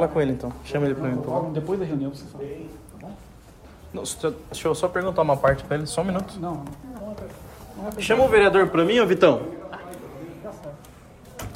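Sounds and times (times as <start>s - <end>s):
speech: 0.0s - 3.3s, 3.9s - 9.6s
room noise: 0.0s - 11.5s
door shut with a firm thud: 11.4s - 11.5s.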